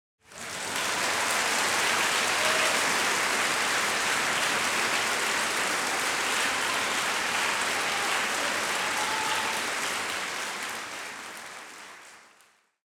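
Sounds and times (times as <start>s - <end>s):
large crowd applause in a music hall after an orchestra: 0.2s - 12.8s
people shouting bravo: 2.3s - 2.9s, 7.3s - 9.8s.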